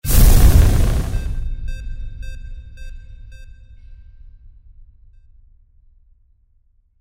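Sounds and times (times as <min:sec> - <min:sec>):
sci-fi magical fire igniting: 0:00.0 - 0:01.4.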